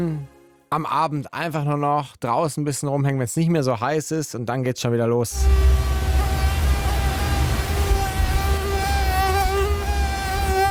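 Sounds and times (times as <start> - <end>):
speech: 0.0 - 5.7
low rumble: 5.4 - 9.4
mosquito buzzing: 5.4 - 10.7.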